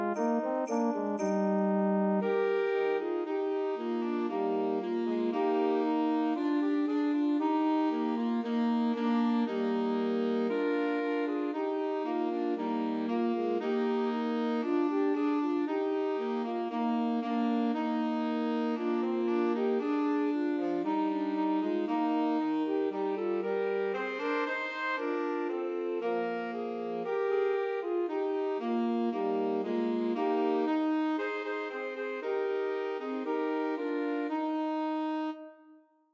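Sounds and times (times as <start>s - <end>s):
two alto saxophones and tenor saxophone trio: 0.1s - 35.7s.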